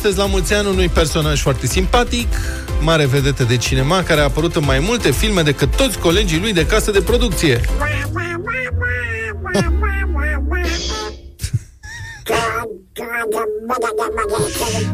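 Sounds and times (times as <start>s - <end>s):
speech: 0.0s - 8.3s, 9.5s - 9.8s, 13.7s - 14.9s
cartoon duck's raspy quacking voice chattering: 7.6s - 11.4s, 12.3s - 14.9s.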